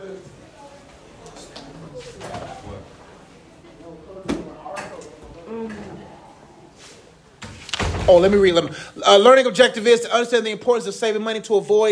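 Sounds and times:
faint shuffling movement: 0.0 - 4.2, 5.1 - 9.0
low room murmur: 0.0 - 10.4
door swinging shut with a sharp thud: 7.4 - 8.5
speech: 8.1 - 11.9.

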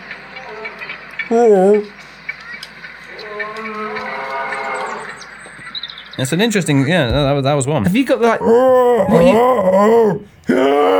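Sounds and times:
speech: 1.3 - 2.1, 6.2 - 10.9
lion roars through a small tinny speaker: 3.1 - 5.2, 8.3 - 10.9.

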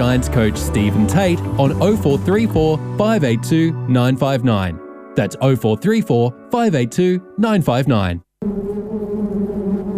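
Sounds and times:
speech: 0.1 - 8.3
wasps buzzing: 8.4 - 9.9.

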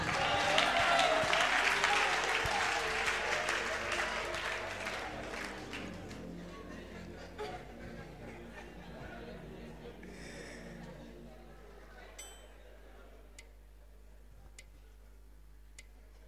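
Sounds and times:
congregation applauding during a church sermon: 0.0 - 10.8
laughter: 0.0 - 13.9.

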